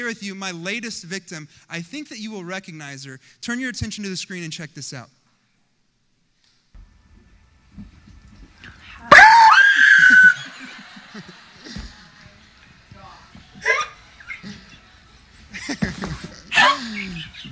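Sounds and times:
speech: 0.0 - 5.2
woman screaming in fright: 9.0 - 10.5
laughter: 9.1 - 17.5.

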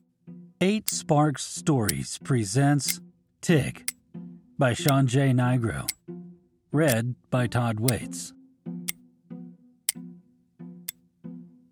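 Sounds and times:
speech: 0.6 - 3.9, 4.6 - 6.0, 6.8 - 8.4
stopwatch ticking: 0.8 - 1.1, 1.8 - 2.1, 4.8 - 5.1, 5.8 - 6.0, 6.8 - 7.1, 7.8 - 8.2.

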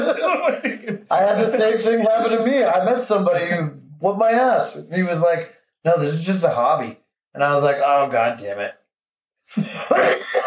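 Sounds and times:
laughter: 0.0 - 2.5, 9.5 - 10.4
speech: 0.0 - 8.8, 9.5 - 10.4
person coughing: 9.7 - 10.4.

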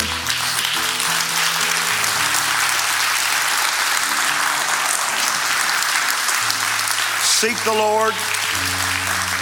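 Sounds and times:
large audience clapping: 0.0 - 9.4
speech: 7.4 - 8.7.

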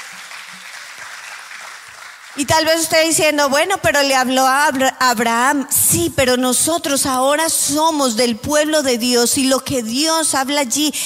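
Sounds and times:
audience applauding: 0.0 - 2.8
speech: 2.4 - 11.0.

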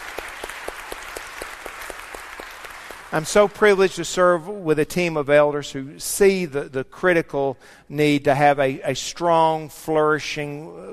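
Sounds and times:
audience applauding: 0.0 - 3.8
speech: 3.1 - 10.9.

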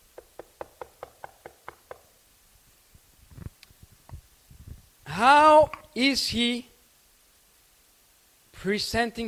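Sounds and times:
crisp knocks on a door: 0.1 - 2.1
speech: 5.2 - 6.7, 8.6 - 9.2.

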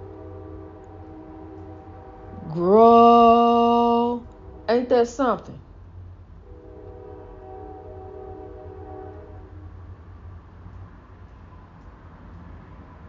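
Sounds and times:
train horn: 0.0 - 4.9, 6.4 - 9.7
passing train rumbling: 0.0 - 13.0
speech: 2.6 - 3.4, 4.7 - 5.7.

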